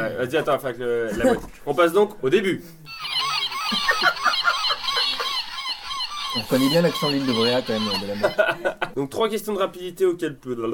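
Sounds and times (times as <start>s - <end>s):
speech: 0.0s - 3.1s, 6.3s - 10.7s
laughing seagull jingle sound effect: 2.9s - 8.5s.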